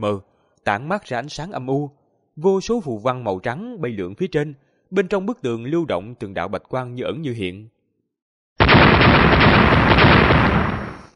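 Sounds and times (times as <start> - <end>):
speech: 0.0 - 7.8
explosions of weapons striking an ice wall: 8.6 - 11.1.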